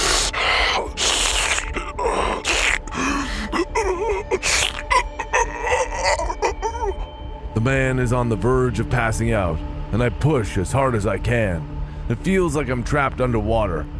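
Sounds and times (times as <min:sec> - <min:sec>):
man gasping and choking for air in wet ragged breaths: 0:00.0 - 0:06.9
speech: 0:07.6 - 0:13.9.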